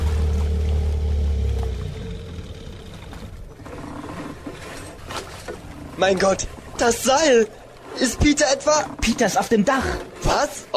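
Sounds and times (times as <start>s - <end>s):
rumbling noise: 0.0s - 4.3s
motorboat engine droning and winding down: 0.0s - 8.9s
water splashing: 0.0s - 10.7s
speech: 6.0s - 10.7s.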